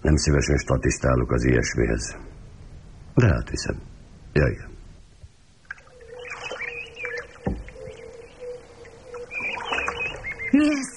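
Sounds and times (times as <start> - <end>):
speech: 0.1 - 2.3, 3.2 - 4.7
birds chirping and calling outdoors by a lake: 5.7 - 10.9
soft thump: 7.4 - 7.8.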